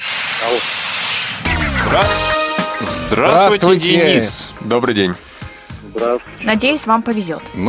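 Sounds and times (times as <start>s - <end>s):
air hissing as a train's emergency brake is pulled: 0.0s - 1.4s
speech: 0.4s - 1.2s, 1.9s - 5.4s, 6.0s - 7.6s.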